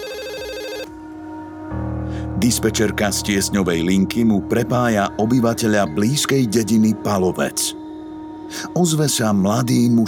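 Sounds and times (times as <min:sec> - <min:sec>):
warbling electronic phone ringtone: 0:00.0 - 0:00.9
speech: 0:02.4 - 0:07.8, 0:08.5 - 0:10.0.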